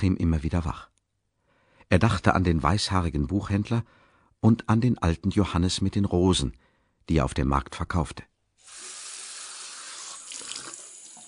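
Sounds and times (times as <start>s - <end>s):
speech: 0.0s - 0.9s, 1.9s - 8.3s
water running from a bathroom tap into a basin: 8.6s - 11.2s.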